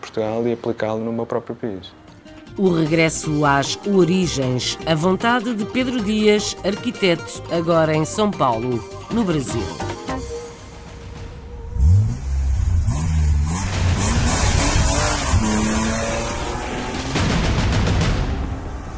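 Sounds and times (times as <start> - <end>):
speech: 0.2 - 2.0, 2.6 - 9.9
racing car engines revving as cars roar past: 11.3 - 18.9.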